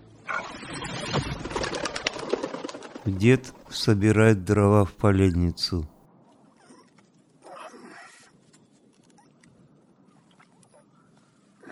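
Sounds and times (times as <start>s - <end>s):
birds' wings flapping as they scatter from a she-wolf: 0.3s - 3.7s
speech: 3.1s - 5.9s.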